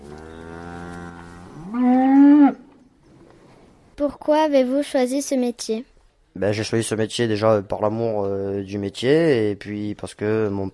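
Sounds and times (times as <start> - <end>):
cow mooing and bellowing: 0.0 - 2.7
speech: 4.1 - 10.7.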